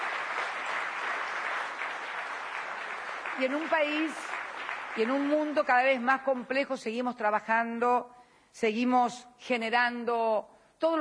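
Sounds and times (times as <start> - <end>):
audience applause at a political speech: 0.0 - 6.0
speech: 3.4 - 4.3, 5.0 - 10.9.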